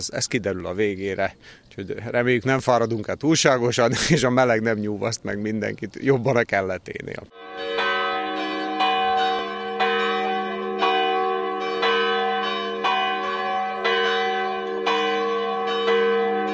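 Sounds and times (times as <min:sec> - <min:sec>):
speech: 0:00.0 - 0:07.8
church bells ringing: 0:07.3 - 0:16.5.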